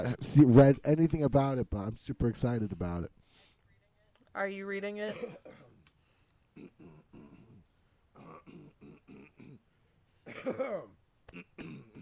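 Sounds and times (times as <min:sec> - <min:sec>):
speech: 0:00.0 - 0:03.2, 0:04.4 - 0:05.7, 0:10.3 - 0:12.0
throat clearing: 0:06.6 - 0:07.6, 0:08.2 - 0:09.6, 0:10.2 - 0:12.0.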